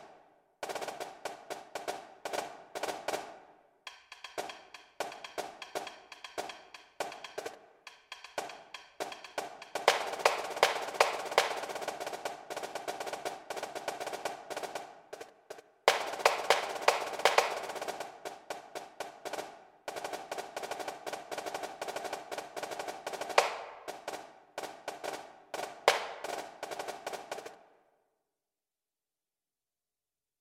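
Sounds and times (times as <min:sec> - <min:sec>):
snare drum hits: 0:00.7 - 0:27.6.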